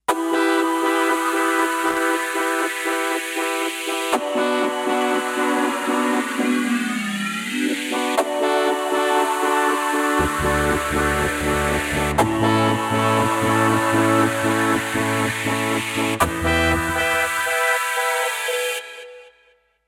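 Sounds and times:
Kawai K5000S synthesizer: 0:00.0 - 0:19.3.

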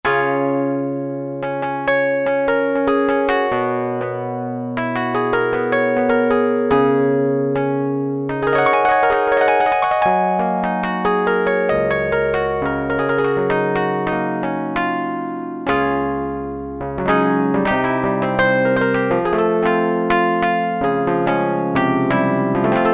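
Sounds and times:
electric piano: 0:00.0 - 0:22.9.

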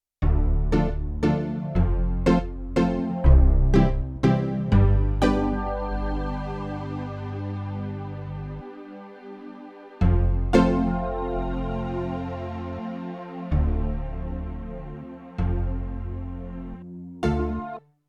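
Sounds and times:
pluck performance on Yamaha TX16W: 0:00.2 - 0:07.2, 0:10.0 - 0:12.8, 0:13.5 - 0:17.8.

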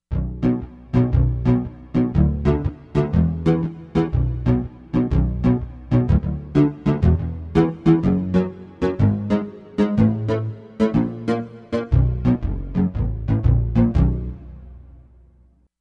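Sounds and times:
Rubass synthesizer bass from Korg MSC-13S Ethnic 2: 0:00.1 - 0:15.2.

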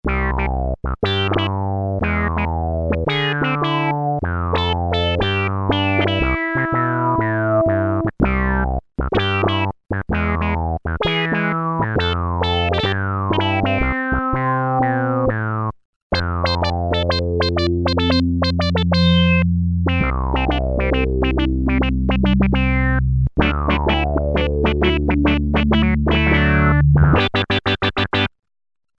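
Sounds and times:
Roland Juno-106 factory preset synth bass: 0:00.0 - 0:28.1.

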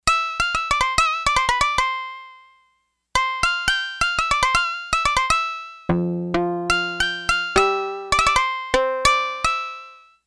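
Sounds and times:
shamisen factory preset voice on a Yamaha DX11 synthesizer: 0:00.0 - 0:02.3, 0:03.2 - 0:10.0.

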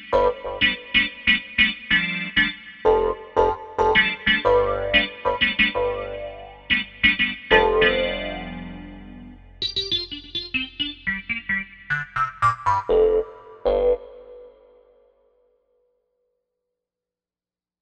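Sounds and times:
Korg M1 synthesizer sound: 0:00.1 - 0:01.4, 0:02.9 - 0:14.9.

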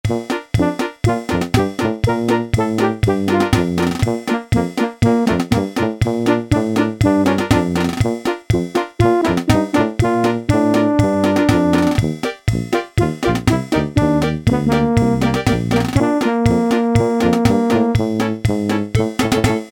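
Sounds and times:
Yamaha SHS-10 keytar factory style march demo: 0:00.0 - 0:19.7.

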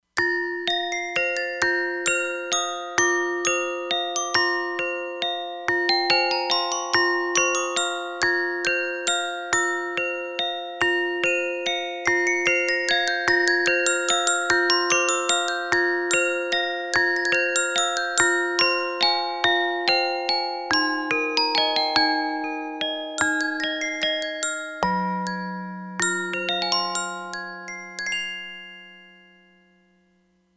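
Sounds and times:
glockenspiel factory preset on a synthesizer module: 0:00.2 - 0:30.5.

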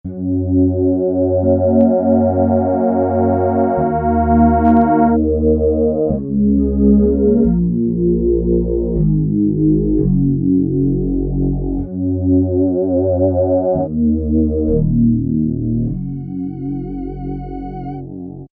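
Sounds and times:
Peavey DPM Spectrum Bass with slow wah: 0:00.1 - 0:18.5.

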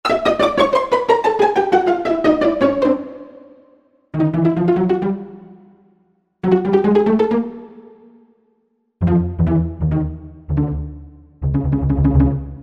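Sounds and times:
pizzicato strings: 0:00.1 - 0:03.4, 0:04.2 - 0:05.5, 0:06.4 - 0:07.8, 0:09.0 - 0:12.6.

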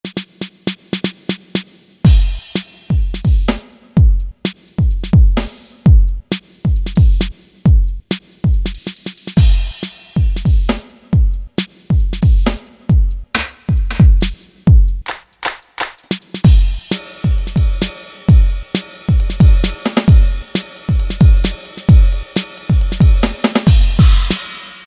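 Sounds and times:
Generalmusic Equinox hybrid drum kit: 0:00.0 - 0:24.8.

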